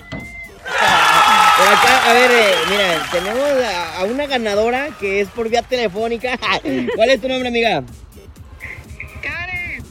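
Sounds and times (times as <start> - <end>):
crowd of prize winners at a street giveaway shouting and screaming: 0.6 - 5.5
crowd of prize winners cheering: 0.6 - 6.6
speech: 1.7 - 8.0.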